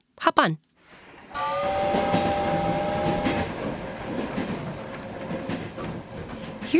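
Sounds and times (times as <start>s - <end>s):
speech: 0.2s - 2.1s
train rumbling on tracks: 1.1s - 6.7s
train horn blast: 1.3s - 3.8s.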